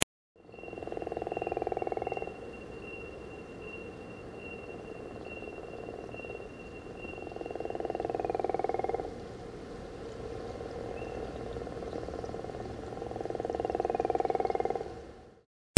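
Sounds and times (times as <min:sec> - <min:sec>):
gopher frog calling: 0:00.0 - 0:15.4.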